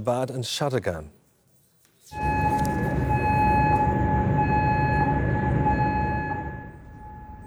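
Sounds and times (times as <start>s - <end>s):
speech: 0.0s - 1.2s
air raid siren in Kuwait's capital: 2.1s - 7.4s
deep rumbling background: 2.1s - 7.4s.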